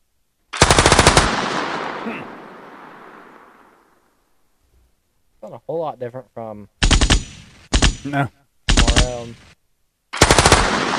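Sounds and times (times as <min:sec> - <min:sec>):
light machine gun firing a short rapid burst: 0:00.6 - 0:02.0, 0:06.8 - 0:08.1, 0:08.7 - 0:09.3, 0:10.2 - 0:10.9
speech: 0:02.0 - 0:02.4, 0:05.5 - 0:06.8, 0:08.0 - 0:08.4, 0:09.0 - 0:09.6.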